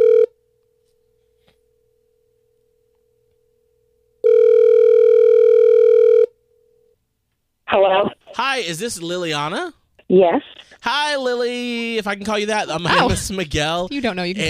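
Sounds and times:
telephone ringback tone while a call is dialed: 0.0s - 0.3s, 4.2s - 6.4s
speech: 7.7s - 14.4s.

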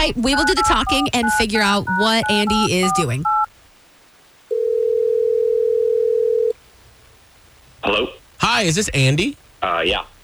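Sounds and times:
speech: 0.0s - 3.4s, 7.8s - 10.1s
telephone ring tone as a call is placed: 0.3s - 3.5s, 4.5s - 6.5s.

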